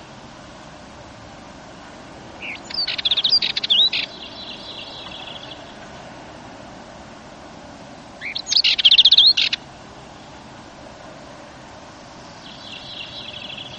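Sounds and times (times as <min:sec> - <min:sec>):
quiet background hiss: 0:00.0 - 0:13.7
Dartford warbler chattering phrases: 0:02.4 - 0:05.8, 0:08.2 - 0:09.6, 0:12.3 - 0:13.7.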